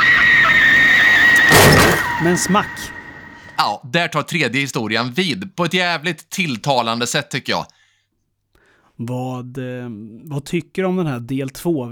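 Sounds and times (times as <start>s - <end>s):
car crashing into something: 0.0s - 3.6s
high-pitched screech as a car approaches: 0.0s - 3.6s
speech: 2.2s - 3.0s, 3.6s - 7.8s, 9.0s - 11.8s.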